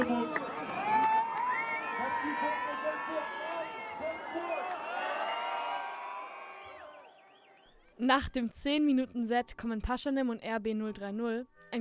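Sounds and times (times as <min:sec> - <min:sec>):
dense concert crowd in a hall screaming and cheering: 0:00.0 - 0:07.8
speech: 0:08.1 - 0:11.8.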